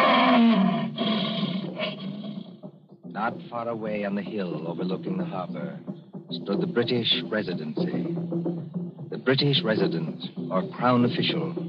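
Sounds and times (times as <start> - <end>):
lion roaring loudly: 0.0 - 2.6
speech: 3.2 - 8.6, 9.3 - 11.6.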